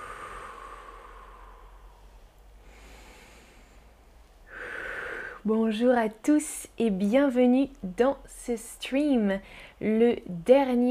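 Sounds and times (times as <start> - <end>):
slow breathing in and out: 0.0 - 5.5
speech: 5.4 - 10.8.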